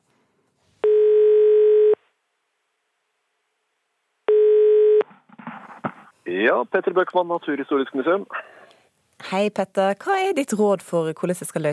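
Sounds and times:
electronic ringback tones from an outgoing phone call: 0.8s - 2.0s, 4.3s - 5.0s
speech: 6.4s - 8.5s, 9.3s - 11.7s.

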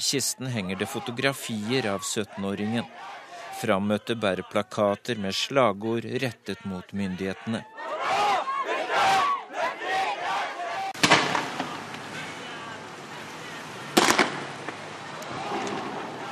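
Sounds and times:
funeral procession crowd shouting slogans against the authorities in a Persian Gulf island state: 0.0s - 5.3s, 6.2s - 16.3s
speech: 0.0s - 7.7s
noisy outdoor din: 0.0s - 16.3s
sharp explosive bangs: 11.0s - 12.0s, 14.0s - 16.2s.

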